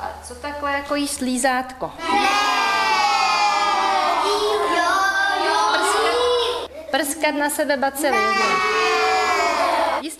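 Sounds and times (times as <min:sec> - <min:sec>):
speech: 0:00.3 - 0:02.4, 0:06.9 - 0:08.7
young children shouting out answers over each other in a classroom: 0:02.0 - 0:06.7, 0:08.1 - 0:10.0.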